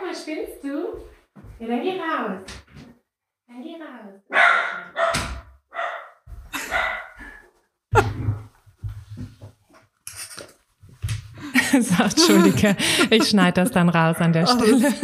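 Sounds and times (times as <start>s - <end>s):
speech: 0.2s - 2.6s, 3.5s - 5.3s, 11.7s - 15.0s
dog barking: 4.3s - 7.4s
laughter: 11.4s - 15.0s.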